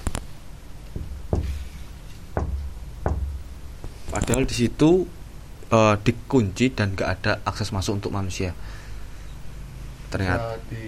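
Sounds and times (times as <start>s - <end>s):
firm knocks on a window: 1.0s - 1.6s, 2.4s - 3.4s
speech: 4.2s - 8.8s, 10.1s - 10.8s.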